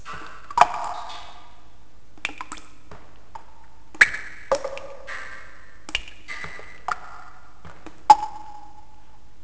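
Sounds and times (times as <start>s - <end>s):
water dripping in a cave: 0.0s - 9.4s.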